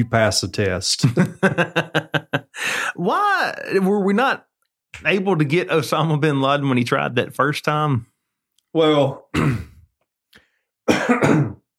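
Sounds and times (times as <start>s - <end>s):
speech: 0.0s - 8.1s, 8.7s - 9.7s, 11.1s - 11.5s
laughter: 1.0s - 2.7s
person coughing with something caught in the throat: 9.3s - 9.9s, 10.9s - 11.7s.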